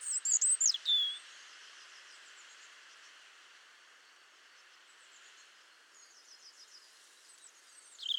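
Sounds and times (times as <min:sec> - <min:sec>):
European robin Erithacus rubecula singing: 0:00.1 - 0:01.2, 0:08.0 - 0:08.1.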